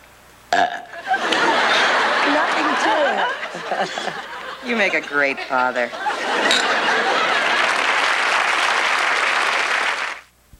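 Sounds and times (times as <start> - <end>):
long throaty belch: 0.5 - 1.0
laughter: 0.9 - 9.8
speech: 3.7 - 6.7.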